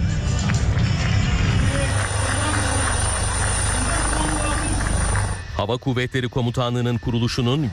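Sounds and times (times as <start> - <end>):
military helicopters and aircraft flying overhead at an air force anniversary air show: 0.2 - 5.7
speech: 5.6 - 7.6.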